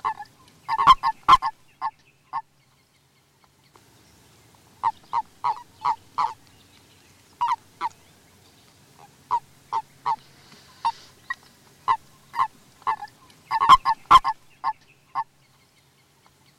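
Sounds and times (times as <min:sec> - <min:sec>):
Common toad croaking: 0:00.0 - 0:01.6, 0:04.8 - 0:06.4, 0:07.4 - 0:08.0, 0:10.8 - 0:15.3.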